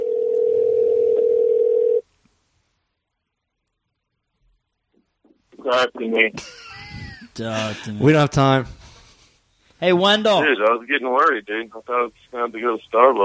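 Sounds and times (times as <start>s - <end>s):
phone call ringing tone: 0.0s - 2.0s
speech: 5.7s - 6.7s, 7.4s - 8.8s, 9.8s - 13.2s.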